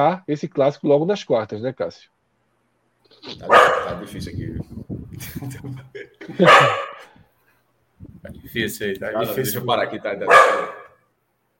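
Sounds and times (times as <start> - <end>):
speech: 0.0 - 2.2, 3.1 - 7.2, 8.0 - 10.8
female dog barking: 3.4 - 4.1, 6.4 - 7.2, 9.2 - 11.0
laughter: 5.2 - 7.0.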